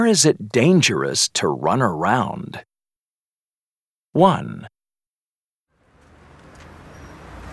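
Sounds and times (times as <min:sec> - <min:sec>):
speech: 0:00.0 - 0:02.7, 0:04.2 - 0:04.7
street traffic rumble of road vehicles: 0:05.8 - 0:07.5.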